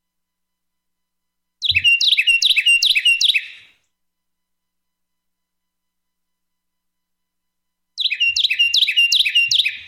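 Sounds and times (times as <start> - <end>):
Carolina wren singing: 1.6 - 3.7, 8.0 - 9.8.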